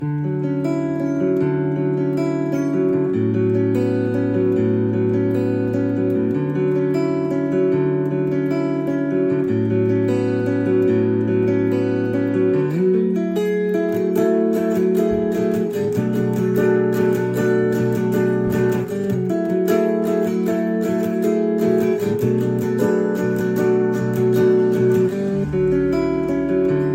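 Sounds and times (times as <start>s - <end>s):
indie guitar music: 0.0s - 26.9s.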